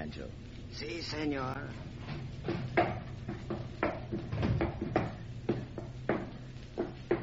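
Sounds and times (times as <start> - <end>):
faint creaking of a wooden hatch: 0.0 - 7.2
speech: 0.1 - 3.3
wooden hatch knocking and clunking while being opened: 2.5 - 7.2.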